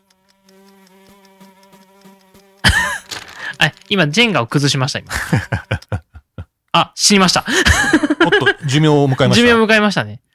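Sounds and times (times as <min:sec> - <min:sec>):
housefly buzzing in flight: 0:00.0 - 0:06.0
laughter: 0:02.6 - 0:03.6, 0:05.0 - 0:06.5, 0:07.4 - 0:09.6
speech: 0:03.6 - 0:05.8, 0:06.8 - 0:10.3.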